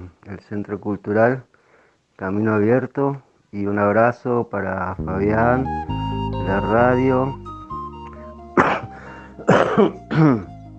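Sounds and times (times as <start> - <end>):
speech: 0.3 - 1.5, 2.2 - 7.4, 9.8 - 10.5
man coughing: 8.6 - 10.5.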